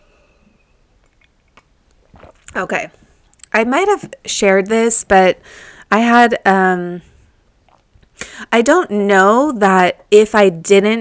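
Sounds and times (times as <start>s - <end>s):
sipping tea from a cup: 0.0s - 3.5s, 7.2s - 8.4s
soft slurping: 0.0s - 4.8s, 7.0s - 8.4s
speech: 2.6s - 3.0s, 3.6s - 7.1s, 8.5s - 10.9s.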